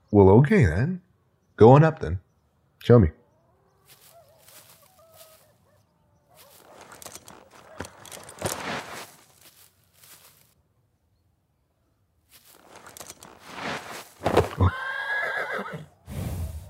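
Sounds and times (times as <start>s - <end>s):
speech: 0.1s - 1.0s, 1.6s - 2.2s, 2.8s - 3.2s
horse hooves clopping and shuffling: 3.9s - 5.6s, 6.3s - 10.6s, 12.3s - 15.7s
horse whinnying loudly and shrilly: 13.0s - 16.6s.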